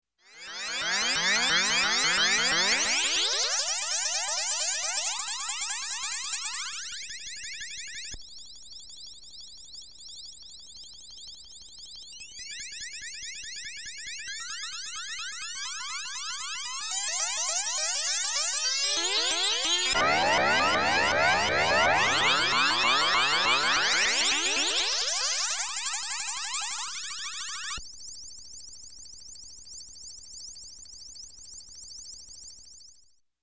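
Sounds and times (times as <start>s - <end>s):
varying electronic space warble tone: 0.4s - 4.4s, 16.8s - 27.8s.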